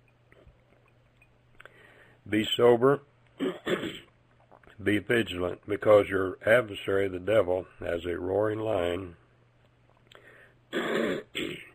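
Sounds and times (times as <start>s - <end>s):
speech: 2.3s - 4.1s, 4.8s - 9.2s
throat clearing: 3.4s - 4.1s, 10.7s - 11.7s.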